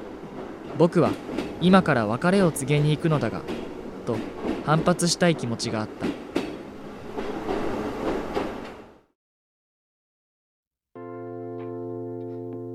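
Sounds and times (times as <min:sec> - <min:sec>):
electric passenger train in Japan rumbling along rails: 0:00.0 - 0:09.0
speech: 0:00.8 - 0:06.2.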